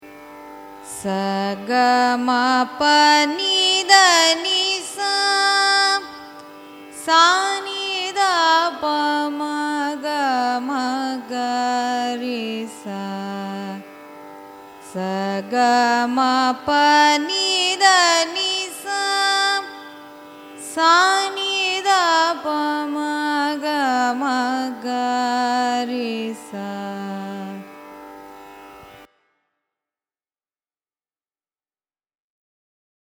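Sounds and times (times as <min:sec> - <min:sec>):
Carnatic music ascending and descending scale of raga Behag: 0:00.0 - 0:29.1.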